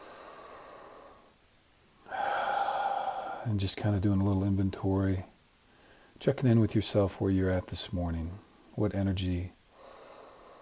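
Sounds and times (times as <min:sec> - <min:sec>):
slow deep breathing during a calm settling-in exercise: 0:00.0 - 0:01.4, 0:02.0 - 0:03.5, 0:05.7 - 0:06.2, 0:09.7 - 0:10.5
speech: 0:03.4 - 0:05.3, 0:06.2 - 0:09.6.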